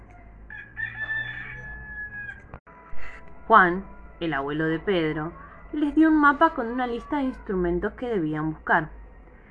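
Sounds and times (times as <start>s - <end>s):
rooster crowing: 0.0s - 3.2s
steady low hum: 1.5s - 9.4s
speech: 3.5s - 9.0s.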